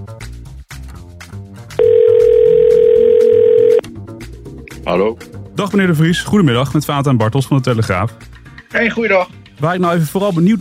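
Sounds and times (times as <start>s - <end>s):
telephone ringing tone as a call is placed: 1.8s - 3.8s
speech: 4.9s - 10.5s.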